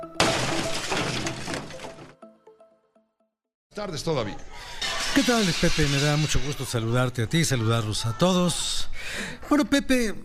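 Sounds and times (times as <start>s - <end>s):
loud crash of glass shattering: 0.2s - 2.2s, 4.8s - 6.6s
speech: 3.8s - 10.2s.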